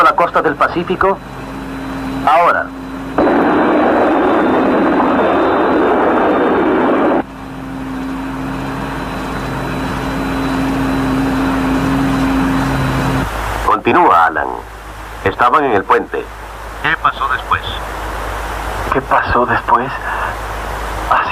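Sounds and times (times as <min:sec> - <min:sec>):
speech: 0:00.0 - 0:01.4, 0:02.2 - 0:03.7, 0:13.9 - 0:17.4, 0:18.9 - 0:20.2
jet aircraft engines roaring flying past: 0:00.0 - 0:21.3.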